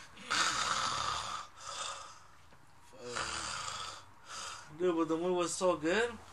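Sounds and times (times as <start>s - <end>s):
person imitating snoring with their voice: 0.2s - 2.2s, 3.0s - 4.7s
speech: 4.8s - 6.3s.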